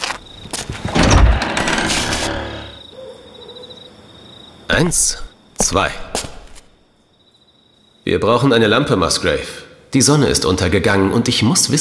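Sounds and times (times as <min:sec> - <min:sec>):
old unlocked door in a manor house being opened: 0:00.6 - 0:02.8
speech: 0:04.8 - 0:06.1, 0:08.1 - 0:11.8.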